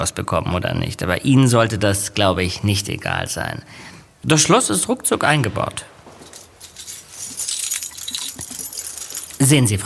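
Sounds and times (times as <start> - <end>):
speech: 0.0 - 6.0, 9.4 - 9.8
bunch of apartment keys jangling: 6.1 - 9.8.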